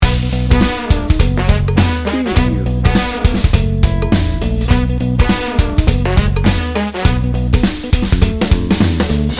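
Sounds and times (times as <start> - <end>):
funk and brass music loop: 0.0 - 8.5.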